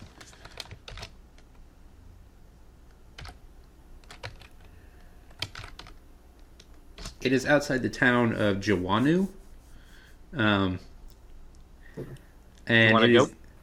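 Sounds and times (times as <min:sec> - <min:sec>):
typing on a computer keyboard: 0:00.0 - 0:01.5, 0:03.2 - 0:03.4, 0:04.0 - 0:04.7, 0:05.3 - 0:06.0
speech: 0:07.2 - 0:09.4, 0:10.3 - 0:10.9, 0:12.0 - 0:13.4.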